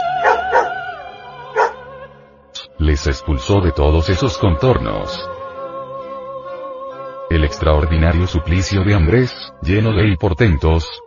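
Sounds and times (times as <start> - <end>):
dog giving a clipped yelp: 0.2 - 0.8, 1.6 - 1.8
dogs barking: 0.2 - 0.8, 1.5 - 1.8
speech: 2.9 - 5.4, 7.5 - 11.0.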